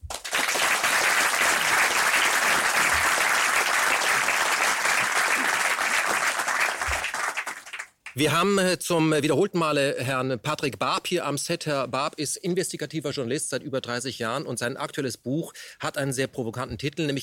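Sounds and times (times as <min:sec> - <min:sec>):
large audience applauding: 0:00.0 - 0:08.2
speech: 0:08.2 - 0:17.2.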